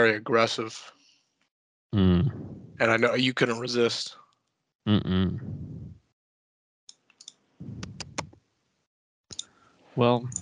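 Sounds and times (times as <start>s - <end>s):
speech: 0.0s - 1.0s, 1.9s - 4.2s, 4.8s - 5.6s, 10.0s - 10.4s
short vocal sound: 2.0s - 2.8s, 4.9s - 6.0s.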